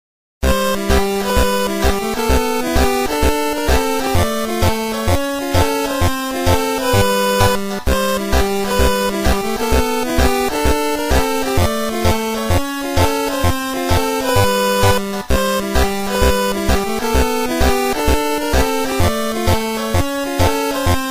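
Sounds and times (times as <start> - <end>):
music: 0.4 - 21.0.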